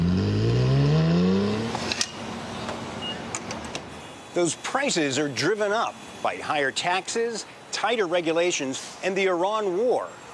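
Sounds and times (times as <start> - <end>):
sports car engine revving: 0.0 - 1.9
speech: 4.4 - 10.2.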